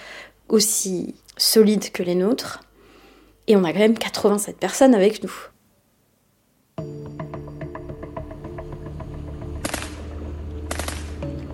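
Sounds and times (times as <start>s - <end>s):
speech: 0.5s - 2.7s, 3.5s - 5.6s
automatic gunfire in bursts from an AK-47 and a heavier gun: 9.6s - 10.0s, 10.7s - 11.1s.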